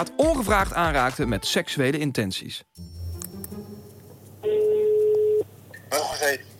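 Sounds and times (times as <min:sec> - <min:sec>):
speech: 0:00.0 - 0:02.9, 0:05.9 - 0:06.5
telephone call being dialed ringing tone: 0:04.5 - 0:05.5.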